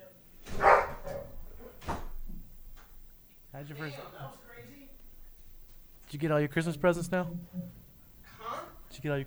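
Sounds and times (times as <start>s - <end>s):
dog barking: 0.5s - 1.9s
speech: 3.6s - 4.8s, 6.1s - 7.8s, 9.0s - 9.2s.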